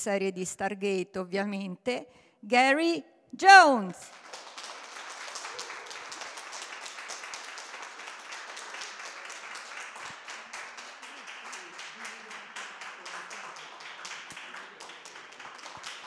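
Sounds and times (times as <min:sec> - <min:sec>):
speech: 0:00.0 - 0:04.4
crowd applauding: 0:04.0 - 0:16.0.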